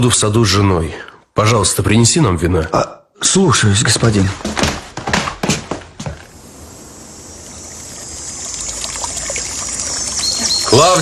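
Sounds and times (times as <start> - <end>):
speech: 0.0 - 4.8, 10.8 - 11.0
small stream trickling and babbling: 6.3 - 11.0.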